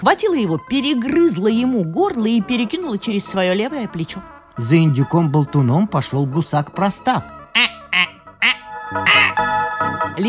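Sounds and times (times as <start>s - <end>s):
speech: 0.0s - 10.2s
duck quacking: 7.5s - 9.4s.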